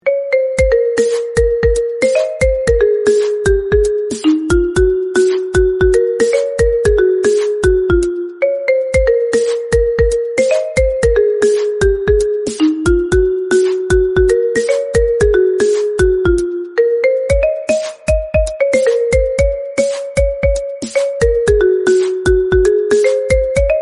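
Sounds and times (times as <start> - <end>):
whimsical retro orchestral ringtone: 0.0 - 23.8.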